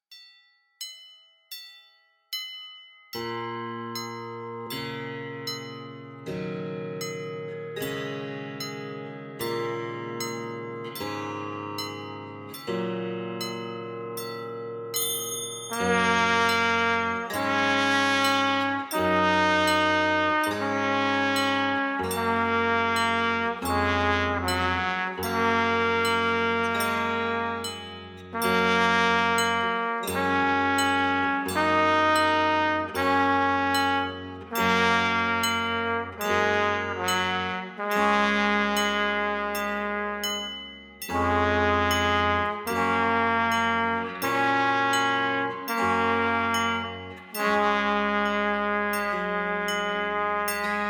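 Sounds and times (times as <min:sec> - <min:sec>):
instrumental evening song without words: 0:00.8 - 0:50.8.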